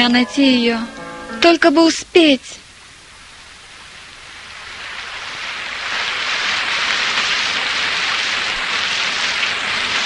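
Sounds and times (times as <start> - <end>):
speech: 0.0 - 2.6
heavy rain: 2.2 - 10.0.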